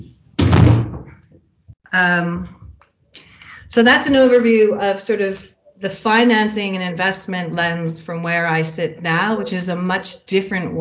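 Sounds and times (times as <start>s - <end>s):
door swinging shut with booming thud: 0.0s - 1.2s
speech: 1.9s - 2.6s, 3.7s - 10.7s.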